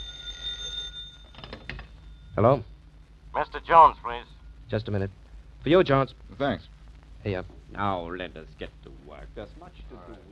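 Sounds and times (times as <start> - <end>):
telephone ringing with electric bell tone: 0.0 - 2.3
low hum: 0.0 - 10.3
speech: 2.4 - 2.7, 3.4 - 10.3.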